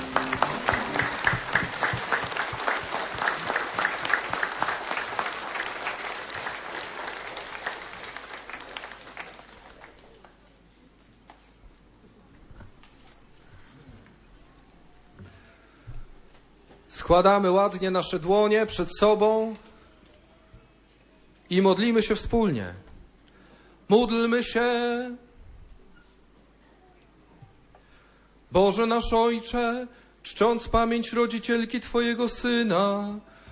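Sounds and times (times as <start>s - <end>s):
large group applauding: 0.0s - 10.4s
speech: 17.1s - 19.7s, 21.5s - 22.9s, 23.9s - 25.2s, 28.5s - 33.3s.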